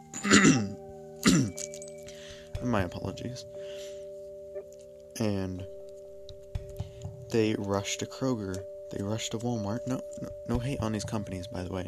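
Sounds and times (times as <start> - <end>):
harsh throat-clearing coughs: 0.2 - 1.7
speech: 2.6 - 4.0, 5.2 - 5.8, 7.3 - 11.8.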